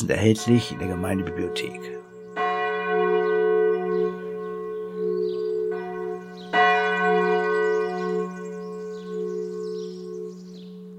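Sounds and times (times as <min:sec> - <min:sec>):
church bells ringing: 0:00.0 - 0:10.9
speech: 0:00.1 - 0:02.1.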